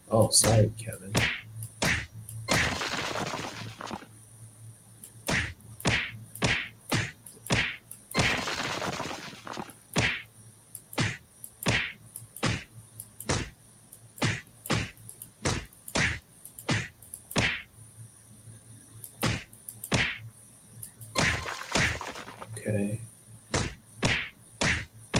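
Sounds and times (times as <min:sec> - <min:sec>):
speech: 0:00.1 - 0:01.3
video game punching impacts of character punching a wall: 0:00.4 - 0:04.1, 0:05.2 - 0:10.3, 0:11.0 - 0:13.6, 0:14.2 - 0:17.7, 0:19.2 - 0:20.2, 0:21.2 - 0:22.5, 0:23.5 - 0:25.1.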